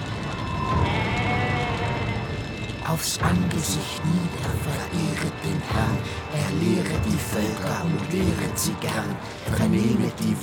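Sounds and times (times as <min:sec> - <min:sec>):
goats bleating: 0:00.7 - 0:02.3
speech: 0:02.9 - 0:10.4.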